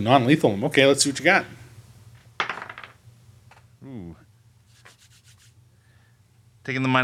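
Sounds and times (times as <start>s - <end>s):
speech: 0.0s - 1.6s, 6.6s - 7.0s
dice rolling on a tabletop: 2.4s - 3.6s
voice murmuring: 3.8s - 4.2s.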